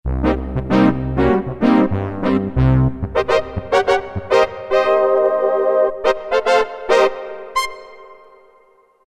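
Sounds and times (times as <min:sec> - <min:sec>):
Roland MT-32 synth brass: 0:00.1 - 0:08.8.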